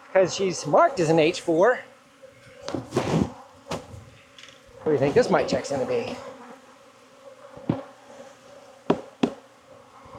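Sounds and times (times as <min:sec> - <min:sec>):
honey bees buzzing during hive inspection: 0:00.0 - 0:10.1
speech: 0:00.1 - 0:01.9, 0:02.7 - 0:03.2, 0:04.8 - 0:06.3
sharp knocks or taps: 0:08.9 - 0:09.4.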